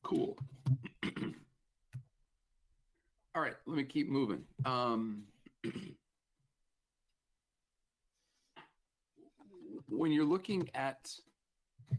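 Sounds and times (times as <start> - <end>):
speech: 0.1 - 0.9, 3.4 - 6.0, 10.0 - 11.3
throat clearing: 0.8 - 1.5, 5.6 - 6.0.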